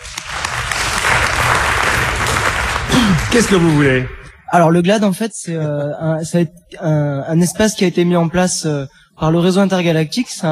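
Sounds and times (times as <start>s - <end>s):
audience applause greeting an introduced guest at a public talk: 0.0s - 4.2s
speech: 3.3s - 10.5s.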